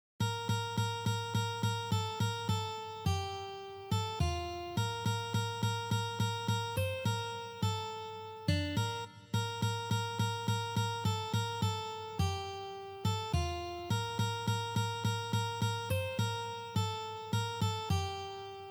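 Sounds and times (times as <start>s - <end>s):
slow guitar piece: 0.2s - 18.7s.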